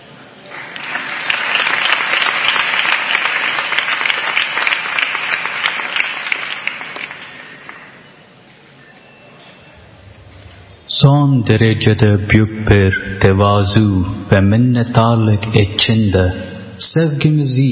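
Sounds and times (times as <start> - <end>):
loud sustained applause from a sizable audience: 0.4 - 8.2
speech: 11.0 - 17.7.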